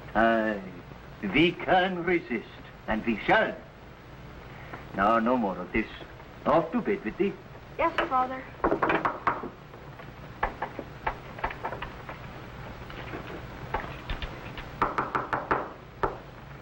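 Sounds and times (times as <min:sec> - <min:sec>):
low hum: 0:00.0 - 0:16.6
speech: 0:00.2 - 0:03.7, 0:04.9 - 0:08.6
knocking on a wooden door: 0:08.0 - 0:09.6, 0:14.8 - 0:16.2.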